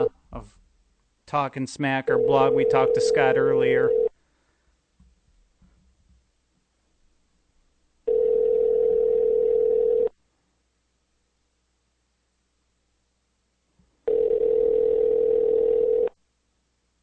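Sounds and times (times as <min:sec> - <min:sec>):
speech: 0:01.3 - 0:04.1
telephone ringback tone while calling: 0:02.2 - 0:04.1, 0:08.1 - 0:10.1, 0:14.1 - 0:16.2.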